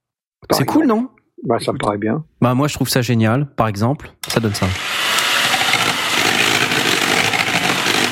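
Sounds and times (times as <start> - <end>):
speech: 0.6 - 5.0
electric mixer whipping cream: 4.2 - 8.1.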